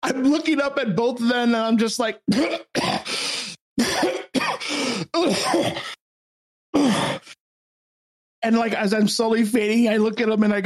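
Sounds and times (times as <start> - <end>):
speech: 0.1 - 4.2, 5.2 - 5.9, 8.4 - 10.6
person coughing in harsh raspy bursts: 2.3 - 3.2, 3.8 - 6.0, 6.8 - 7.4.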